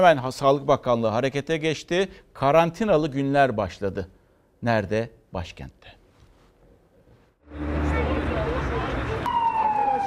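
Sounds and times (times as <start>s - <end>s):
speech: 0.0s - 6.0s, 7.5s - 7.8s
ambulance siren in Ankara: 7.4s - 10.0s
rumbling traffic in Ankara: 7.4s - 10.0s.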